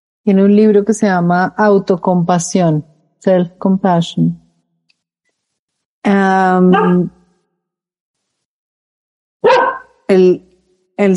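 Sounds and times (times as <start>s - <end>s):
speech: 0.2s - 4.4s, 6.0s - 7.2s, 10.1s - 11.1s
dog barking: 6.7s - 7.2s, 9.4s - 10.0s.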